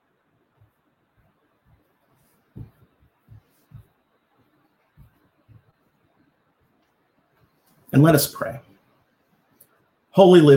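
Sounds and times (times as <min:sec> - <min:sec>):
hiss: 0:00.0 - 0:10.5
soft low thumps: 0:00.5 - 0:06.4
speech: 0:07.9 - 0:08.7, 0:10.2 - 0:10.5.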